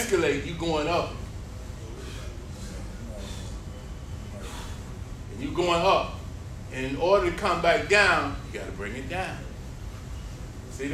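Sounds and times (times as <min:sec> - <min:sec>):
low steady hum: 0:00.0 - 0:10.9
speech: 0:00.1 - 0:01.2, 0:05.4 - 0:09.5
person breathing quickly and audibly in sharp breathy bursts: 0:01.9 - 0:05.1.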